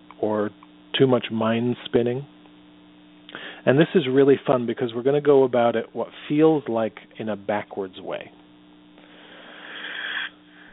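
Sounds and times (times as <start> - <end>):
speech: 0.2 - 2.3, 3.6 - 8.4
person drawing in a single breath: 3.3 - 3.6, 9.0 - 10.7.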